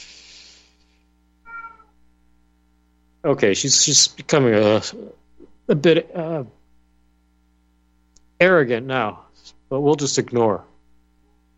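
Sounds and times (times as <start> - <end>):
low steady hum: 0.0 - 11.5
female pet cat meowing: 1.5 - 2.0
speech: 3.2 - 6.6, 8.4 - 10.7.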